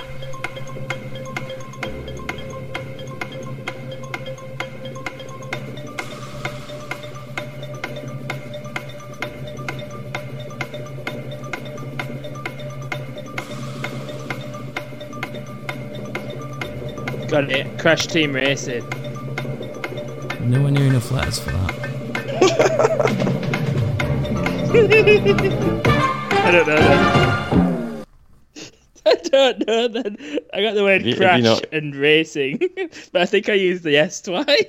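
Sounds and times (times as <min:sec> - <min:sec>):
game show countdown clock ticking: 0:00.0 - 0:27.4
sustained droning musical backing: 0:00.0 - 0:28.1
speech: 0:17.4 - 0:19.0, 0:20.5 - 0:21.7, 0:24.7 - 0:25.9, 0:26.5 - 0:27.4, 0:29.8 - 0:34.6
laughter: 0:22.2 - 0:27.2, 0:29.0 - 0:31.7.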